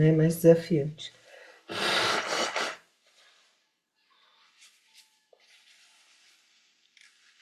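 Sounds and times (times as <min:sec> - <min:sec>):
speech: 0:00.0 - 0:01.8
deep forceful breathing through the nose: 0:01.2 - 0:03.3.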